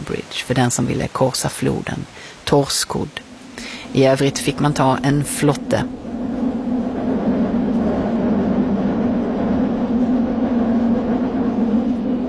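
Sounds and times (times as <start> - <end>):
speech: 0.1 - 6.0
rattling wash of underground train track noise: 2.7 - 12.2
London Underground train in motion rumbling: 3.1 - 12.2.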